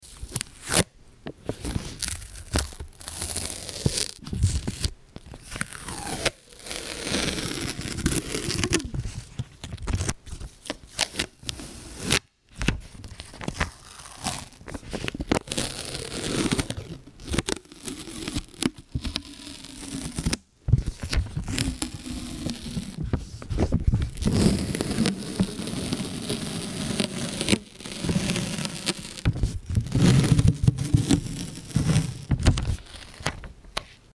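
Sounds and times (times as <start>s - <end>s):
packing tape: 1.5s - 20.4s, 21.0s - 23.0s, 24.1s - 33.5s.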